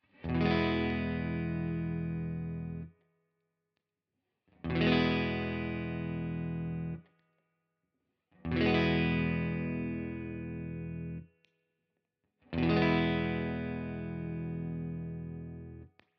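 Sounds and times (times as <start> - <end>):
Carl Martin Tone Tweaker pedal with all knobs at 12 o'clock: 0.1 - 3.0, 4.7 - 7.1, 8.5 - 11.3, 12.6 - 15.9.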